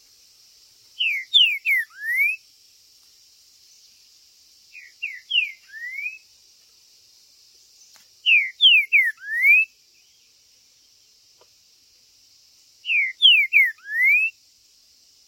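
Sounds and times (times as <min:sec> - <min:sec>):
Green-winged saltator song: 0:01.0 - 0:02.4, 0:04.7 - 0:06.3, 0:07.8 - 0:11.1, 0:12.8 - 0:14.4.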